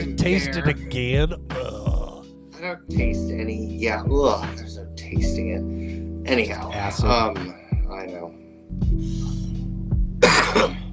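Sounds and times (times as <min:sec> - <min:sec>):
speech: 0:00.2 - 0:01.7, 0:02.6 - 0:09.2
harsh cough: 0:10.2 - 0:10.8.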